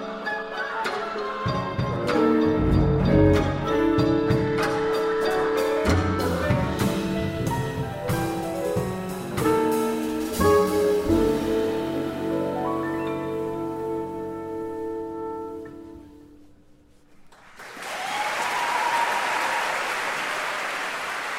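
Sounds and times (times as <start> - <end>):
final sustained notes at a concert: 1.3 - 17.0
concert audience applauding: 17.2 - 21.3.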